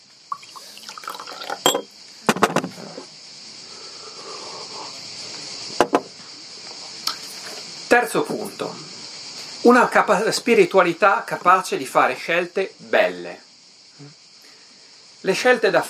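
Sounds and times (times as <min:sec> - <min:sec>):
water poured into a glass: 0:00.3 - 0:01.9
glass clinks and knocks: 0:01.2 - 0:02.7
speech: 0:07.9 - 0:09.0, 0:09.6 - 0:13.4, 0:15.2 - 0:15.8.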